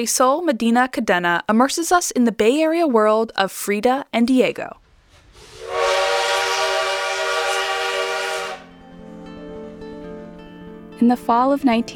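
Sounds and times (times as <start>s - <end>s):
speech: 0.0s - 4.8s, 11.0s - 11.9s
train rolling rumble: 4.8s - 11.1s
train whistle blasting: 5.4s - 10.3s.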